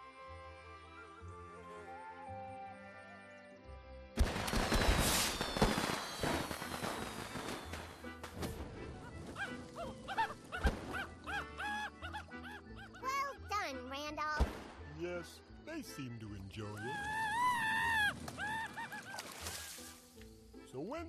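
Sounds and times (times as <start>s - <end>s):
music: 0.0s - 5.0s, 5.9s - 21.0s
fireworks being set off: 4.2s - 9.3s
laughter: 9.0s - 13.5s, 17.8s - 19.8s
speech: 15.8s - 17.1s, 20.8s - 21.0s.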